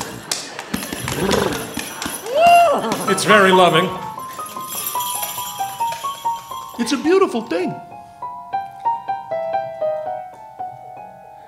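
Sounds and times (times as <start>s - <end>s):
horse harness bells jingling: 0.0s - 7.9s
speech: 1.2s - 1.6s, 2.8s - 4.0s, 6.8s - 7.9s.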